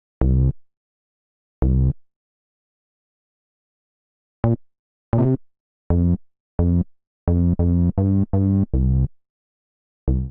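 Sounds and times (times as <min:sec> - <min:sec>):
slow C minor bassline: 0:00.2 - 0:00.6, 0:01.6 - 0:02.0, 0:04.4 - 0:09.1, 0:10.1 - 0:10.2.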